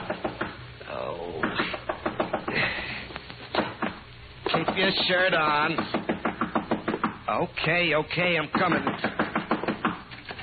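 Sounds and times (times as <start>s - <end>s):
speech: 0.1s - 0.3s, 4.6s - 6.0s, 7.3s - 9.1s
knocking on a hotel room door: 1.4s - 2.6s, 3.6s - 7.2s, 8.5s - 10.0s.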